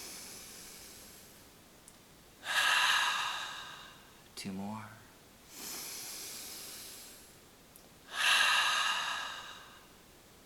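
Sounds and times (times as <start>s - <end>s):
deep breath drawn in through the nose: 0.0s - 1.5s, 2.4s - 4.2s, 5.5s - 7.4s, 8.1s - 10.0s
speech: 4.4s - 5.0s.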